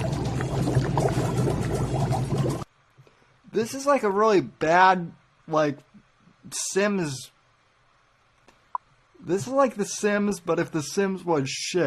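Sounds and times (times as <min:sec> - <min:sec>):
spaghetti dropped into a pot of boiling water in a computer game: 0:00.0 - 0:02.7
speech: 0:03.6 - 0:07.3, 0:09.2 - 0:11.8.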